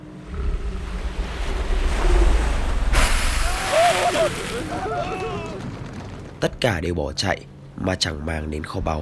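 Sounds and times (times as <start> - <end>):
low wind rumble: 0.0 - 9.0
ocean waves surging: 0.1 - 6.2
speech: 6.5 - 9.0.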